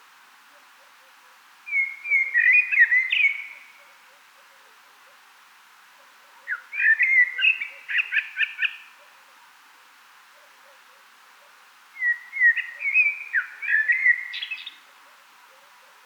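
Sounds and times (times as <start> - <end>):
common blackbird Turdus merula singing: 1.7 - 3.8, 6.5 - 8.9, 12.0 - 14.8.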